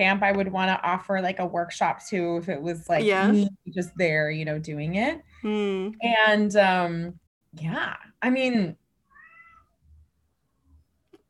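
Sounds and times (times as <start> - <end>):
speech: 0.0 - 8.8
cat meowing: 9.1 - 9.8.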